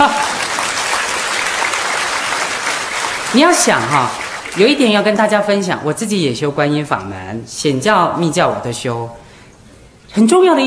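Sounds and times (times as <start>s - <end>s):
audience applause: 0.0s - 5.0s
speech: 3.3s - 9.2s, 10.1s - 10.6s.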